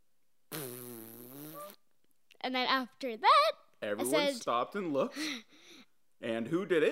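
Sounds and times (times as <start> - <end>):
fart at a Thanksgiving dinner: 0.5 - 1.8
speech: 2.4 - 5.6, 6.2 - 6.9.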